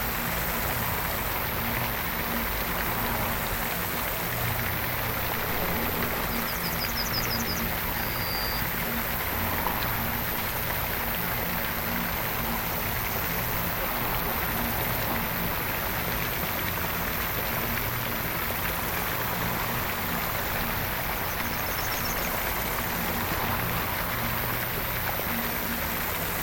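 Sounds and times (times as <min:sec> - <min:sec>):
large fountain splashing in a citadel: 0:00.0 - 0:26.4
brief high chirps likely birds: 0:06.2 - 0:08.7.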